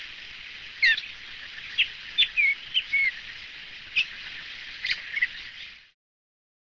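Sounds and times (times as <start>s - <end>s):
steady hiss: 0.0s - 6.0s
Dusky thrush calling short thin whistled notes: 0.8s - 5.9s.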